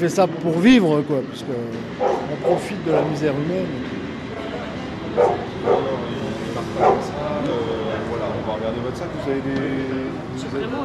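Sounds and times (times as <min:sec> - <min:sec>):
speech: 0:00.0 - 0:04.0, 0:05.2 - 0:06.1, 0:08.7 - 0:10.8
steady hum: 0:00.0 - 0:10.8
drug detection dog barking: 0:02.0 - 0:02.3, 0:05.2 - 0:06.0, 0:06.8 - 0:07.1.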